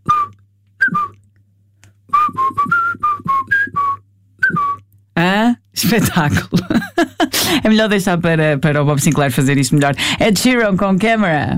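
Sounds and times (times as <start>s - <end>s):
person whistling a catchy pop tune: 0.0s - 1.2s, 2.1s - 4.9s
speech: 5.8s - 11.5s.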